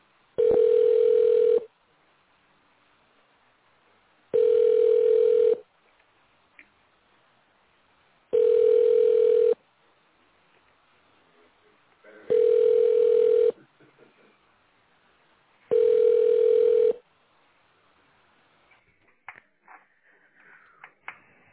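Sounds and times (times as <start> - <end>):
telephone ringback tone while a call is being placed: 0.4 - 1.7, 4.4 - 5.6, 8.3 - 9.6, 12.3 - 13.6, 15.7 - 17.0.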